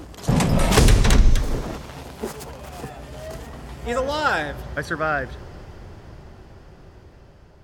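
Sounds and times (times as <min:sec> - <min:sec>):
heavy anechoic chamber door swinging open with a low thump: 0:00.2 - 0:01.7
speech: 0:03.9 - 0:05.4.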